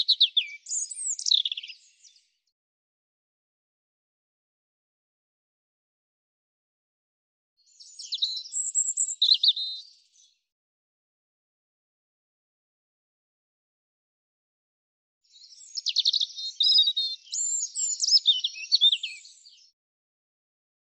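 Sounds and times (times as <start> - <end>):
European robin singing: 0.0 - 2.3, 7.6 - 10.4, 15.2 - 19.8.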